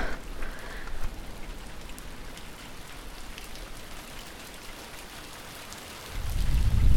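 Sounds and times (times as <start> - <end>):
water drops dripping in a damp gorge: 0.0 - 6.9
low rumbling gust: 6.1 - 6.9.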